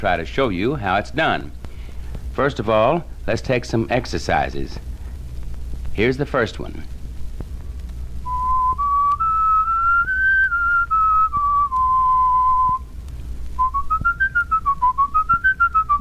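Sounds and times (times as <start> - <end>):
speech: 0.0 - 1.6, 2.4 - 4.9, 6.0 - 6.9
person whistling a tune as a whistling exercise: 8.3 - 12.8, 13.6 - 15.9.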